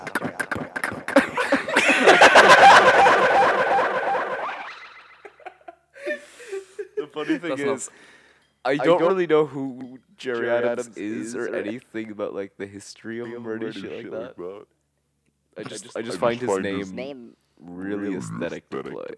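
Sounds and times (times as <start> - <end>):
voice drenched in a heavy echo effect: 0.0 - 4.9, 15.7 - 17.2, 17.9 - 19.0
people chuckling: 0.0 - 7.5, 15.7 - 16.9, 18.1 - 18.9
speech: 7.2 - 14.8, 15.6 - 19.1.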